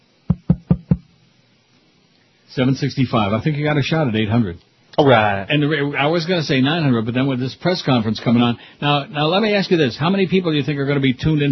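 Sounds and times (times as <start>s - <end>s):
boomy knocks on a microphone: 0.3s - 1.1s
speech: 2.5s - 11.5s.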